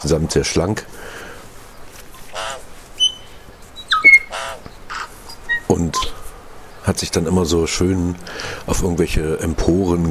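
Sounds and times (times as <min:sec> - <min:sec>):
speech: 0:00.0 - 0:01.3, 0:05.7 - 0:06.2, 0:06.8 - 0:10.0
tui song: 0:02.4 - 0:06.3.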